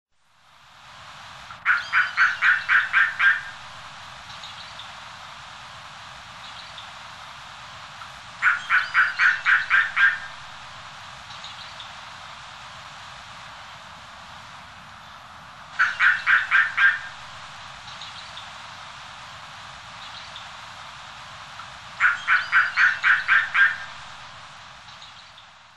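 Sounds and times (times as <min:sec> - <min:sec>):
Haliaeetus pelagicus at sea: 0:01.6 - 0:03.6, 0:08.4 - 0:10.3, 0:15.8 - 0:17.2, 0:22.0 - 0:24.0.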